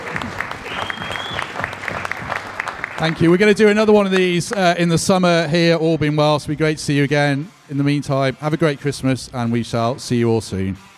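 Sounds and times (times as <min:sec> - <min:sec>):
audience applauding at a live event: 0:00.0 - 0:04.7
speech: 0:03.0 - 0:10.9.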